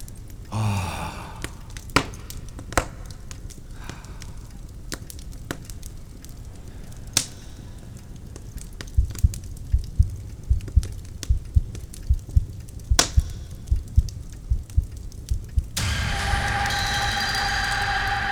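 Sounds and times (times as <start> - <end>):
fireplace fire crackling: 0.0 - 18.3
low steady hiss: 0.0 - 18.3
soft breathy sigh: 0.5 - 2.4, 3.7 - 4.7.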